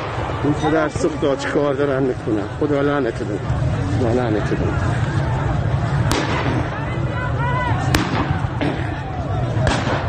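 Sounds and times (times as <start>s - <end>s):
speech: 0.4s - 5.1s
roar of protesting crowd on a riverbed: 3.4s - 10.0s
pellet gun shots fired by security agents at protesters: 6.0s - 6.7s, 7.9s - 8.9s, 9.6s - 10.0s
protesters shouting: 6.4s - 10.0s.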